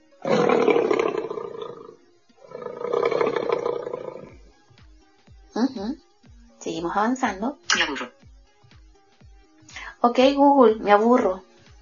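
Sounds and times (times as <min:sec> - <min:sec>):
lion roaring: 0:00.2 - 0:04.4
speech: 0:06.9 - 0:08.2, 0:10.0 - 0:11.5.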